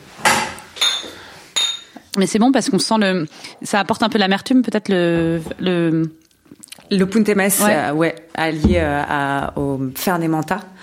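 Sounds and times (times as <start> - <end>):
glasses clinking in a toast: 0.8 - 2.0
speech: 2.2 - 6.2, 6.9 - 10.8.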